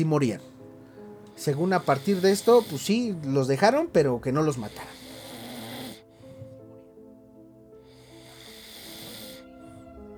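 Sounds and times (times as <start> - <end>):
speech: 0.0 - 0.5, 1.4 - 5.0
person snoring loudly: 1.3 - 3.2, 4.4 - 6.5, 7.9 - 9.8.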